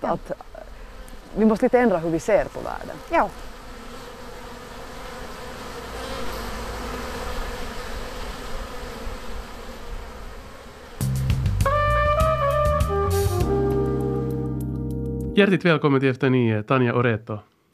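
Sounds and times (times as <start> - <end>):
speech: 0.0 - 0.5, 1.3 - 3.6, 15.4 - 17.5
many honeybees buzzing around their hives: 0.0 - 14.7
sustained musical tones: 11.5 - 15.6.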